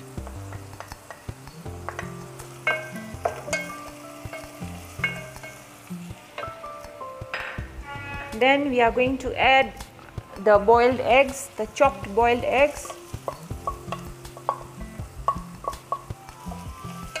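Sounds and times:
chopped green chilies sizzling with frying onions in a pan: 0.0 - 17.1
utensil clinking against a metal pan: 1.9 - 5.6, 12.6 - 17.1
speech: 8.4 - 9.8, 10.4 - 12.9.

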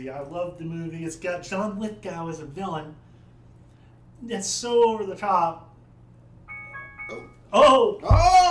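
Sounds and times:
speech: 0.0 - 3.1, 4.2 - 5.7, 7.1 - 8.4
low hum: 0.0 - 8.4
cheap phone notification chime: 6.5 - 7.6.

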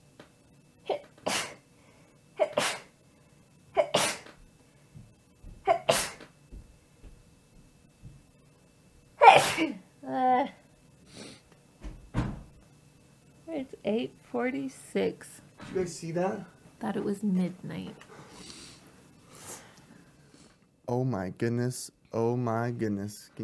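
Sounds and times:
person sneezing: 0.9 - 1.6, 2.4 - 2.9, 3.8 - 4.4, 5.7 - 6.3, 9.2 - 9.8
speech: 13.9 - 18.1, 20.9 - 23.4.

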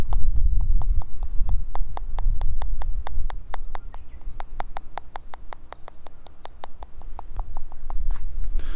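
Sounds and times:
tapping on a smartphone: 0.0 - 8.3.

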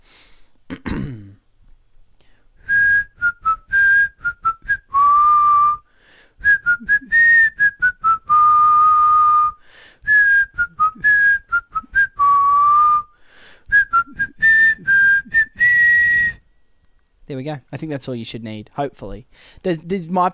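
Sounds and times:
person clearing throat: 0.7 - 1.5
person whistling a TV theme tune: 2.6 - 16.7
speech: 17.5 - 20.3.

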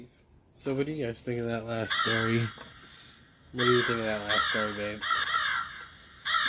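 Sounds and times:
speech: 0.6 - 2.7, 3.5 - 5.3
crow cawing: 1.8 - 6.4.

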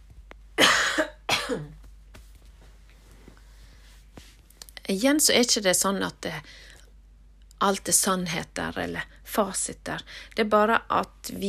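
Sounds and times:
harsh coughs: 0.6 - 1.8
speech: 1.5 - 1.8, 4.9 - 6.7, 7.6 - 11.4.

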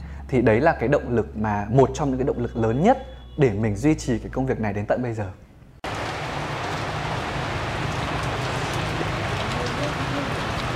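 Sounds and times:
speech: 0.3 - 5.4
heavy rain pouring: 5.8 - 10.7.

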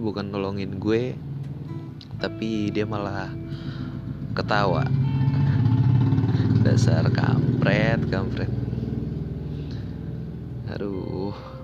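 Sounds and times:
speech: 0.0 - 1.3, 2.2 - 3.7, 4.4 - 5.1, 6.6 - 8.6
motorcycle engine droning past outside a house: 1.0 - 11.6.

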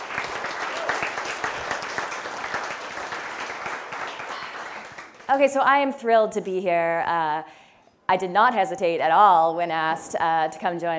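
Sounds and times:
applause from a sizable audience at an event in Clitheroe: 0.0 - 5.3
speech: 5.3 - 10.9.

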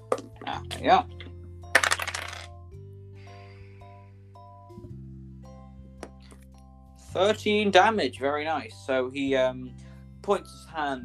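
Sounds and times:
speech: 0.6 - 1.2, 7.1 - 11.0
two eight-sided dice clattering across a hard tabletop: 1.8 - 2.5.

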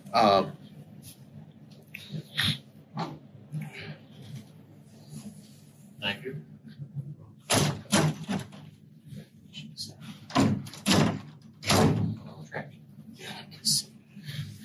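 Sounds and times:
voices: 0.0 - 7.4, 9.0 - 10.4, 12.0 - 14.6
speech: 0.1 - 1.2
doors slamming shut: 7.4 - 8.7, 10.1 - 12.4.

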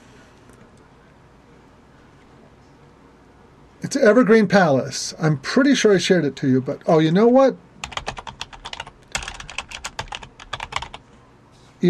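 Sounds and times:
speech: 3.8 - 7.7
typing on a computer keyboard: 7.8 - 11.0.

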